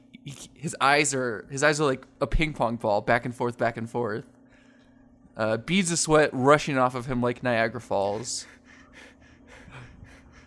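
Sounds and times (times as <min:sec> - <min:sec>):
speech: 0:00.2 - 0:04.4, 0:05.4 - 0:09.1
heavy panting breaths: 0:07.9 - 0:10.4.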